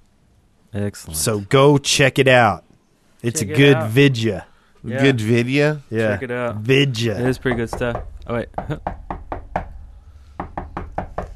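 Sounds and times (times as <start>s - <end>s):
speech: 0.7s - 9.0s
knocking on a door: 7.2s - 11.3s.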